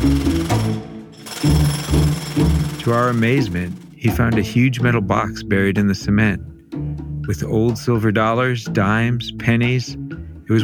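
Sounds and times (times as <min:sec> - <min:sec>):
jackhammer breaking concrete: 0:00.0 - 0:04.6
speech: 0:02.8 - 0:06.5, 0:07.2 - 0:10.6.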